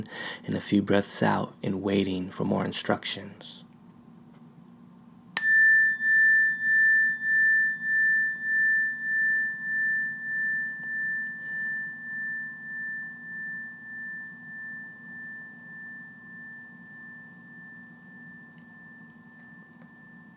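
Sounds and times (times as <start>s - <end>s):
speech: 0.0s - 3.6s
faint low hum: 0.0s - 20.3s
meditation bell ringing: 5.4s - 20.3s.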